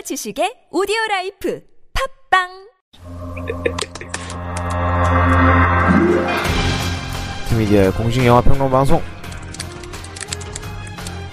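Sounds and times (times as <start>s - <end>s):
speech: 0.0s - 4.0s, 7.5s - 9.2s
steady low musical hum: 3.0s - 7.4s
keyboard typing: 9.3s - 10.6s.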